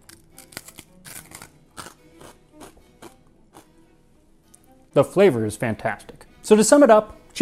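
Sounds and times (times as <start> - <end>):
crunching on hard dry rusk bread: 0.0 - 3.7
speech: 5.0 - 7.3.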